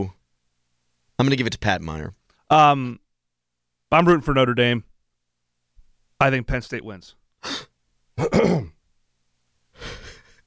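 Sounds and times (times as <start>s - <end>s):
speech: 1.2s - 3.0s, 3.9s - 4.9s, 6.2s - 8.8s
person gruffly clearing throat: 8.2s - 8.8s.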